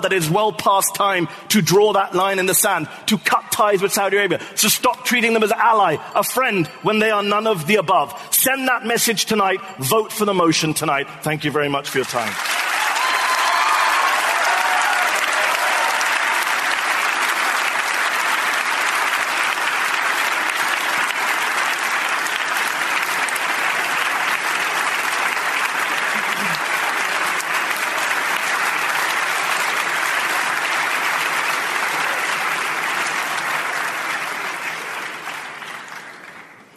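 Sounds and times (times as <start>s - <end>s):
speech: 0.0s - 12.6s
large audience applauding at a debate after a speaker finishes: 12.0s - 36.7s.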